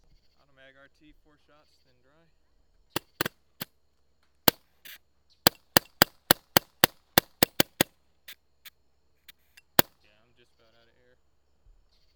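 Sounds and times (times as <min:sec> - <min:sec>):
automag gunshots: 0:03.0 - 0:03.3, 0:05.5 - 0:07.9.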